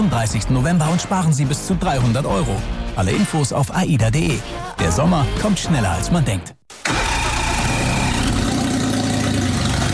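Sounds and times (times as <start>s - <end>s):
speech: 0.1s - 6.6s
car engine with worn-out exhaust idling roughly: 6.9s - 9.9s.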